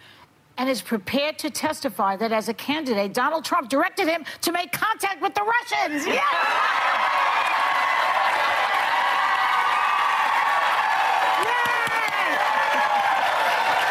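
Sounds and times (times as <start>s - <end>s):
speech: 0.6s - 6.9s
shouts and whoops from crowd: 5.9s - 13.8s
large crowd cheering: 6.0s - 13.8s.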